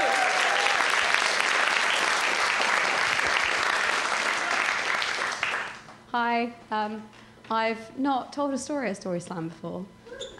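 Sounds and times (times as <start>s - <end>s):
large audience applause: 0.0s - 5.8s
speech: 6.4s - 10.3s.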